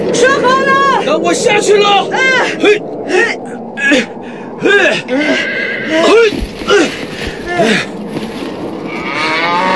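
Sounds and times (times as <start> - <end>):
speech: 0.1 - 6.5
calf mooing during a rope-tying rescue: 8.9 - 9.7.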